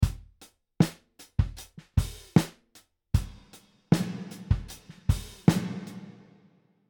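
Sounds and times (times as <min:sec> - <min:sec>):
snare drum with reverb in a large room: 0:00.8 - 0:02.6, 0:03.2 - 0:06.4.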